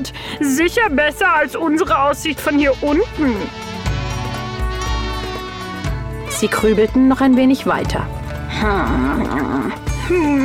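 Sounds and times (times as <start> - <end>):
speech: 0.0 - 3.6, 6.4 - 10.4
fly buzzing overhead: 2.2 - 7.0.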